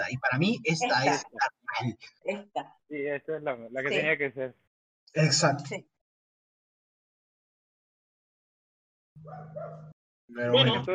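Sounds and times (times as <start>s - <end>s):
speech: 0.1s - 6.0s, 9.2s - 10.9s
dog drawn-out bark: 9.2s - 10.0s.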